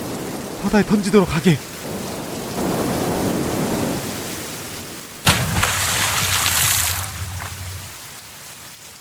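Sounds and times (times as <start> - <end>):
heavy rain in a storm at sea: 0.0 - 9.0
speech: 0.6 - 1.7
thunderclap in a storm at sea: 1.7 - 8.2.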